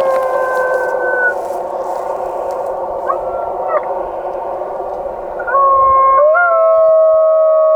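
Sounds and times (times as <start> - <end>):
golden jackals howling together: 0.0 - 7.2.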